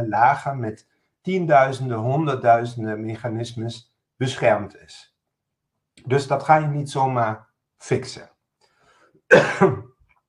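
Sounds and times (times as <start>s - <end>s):
speech: 0.0s - 5.1s, 6.0s - 8.3s, 9.3s - 9.9s
lecturer coughing during a lecture on the brain: 9.3s - 10.0s.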